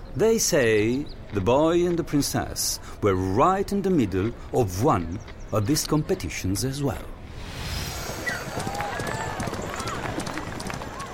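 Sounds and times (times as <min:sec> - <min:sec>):
speech: 0:00.2 - 0:07.2
excited crowd roaring and shouting at a chariot race: 0:07.3 - 0:11.1
black horses galloping in a chariot race at funeral games: 0:07.9 - 0:11.1.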